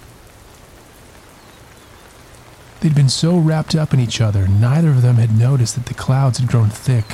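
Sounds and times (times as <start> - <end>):
steady rain pattering onto a basket and the ground: 0.0 - 7.1
speech: 2.8 - 7.1.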